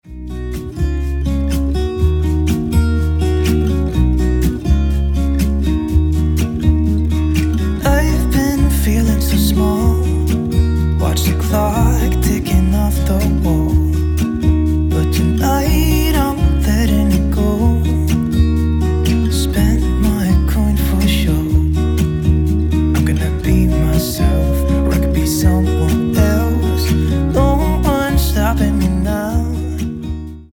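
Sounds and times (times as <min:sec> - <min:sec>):
acoustic version of a piece of music: 0:00.0 - 0:30.5.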